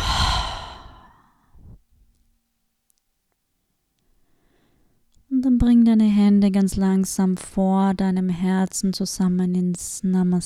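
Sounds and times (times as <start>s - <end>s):
deep exhale through an open mouth: 0.0s - 1.8s
speech: 5.6s - 10.4s.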